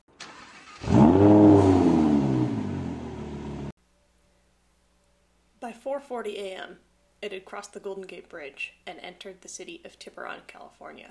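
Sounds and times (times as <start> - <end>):
yellow Lamborghini sports car revving and driving away: 0.8 - 3.7
speech: 5.8 - 11.0.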